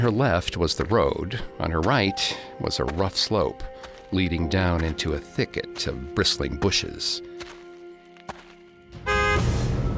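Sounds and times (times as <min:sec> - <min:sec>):
speech: 0:00.0 - 0:07.6
car horn blaring: 0:09.0 - 0:09.6.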